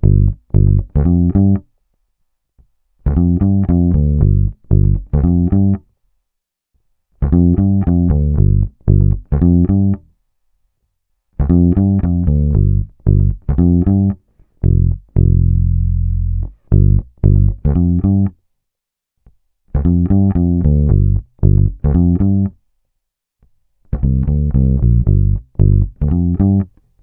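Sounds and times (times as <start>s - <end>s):
electric bass loop recorded direct: 0.0s - 1.6s, 3.1s - 5.8s, 7.2s - 10.0s, 11.4s - 18.3s, 19.7s - 22.5s, 23.9s - 26.7s.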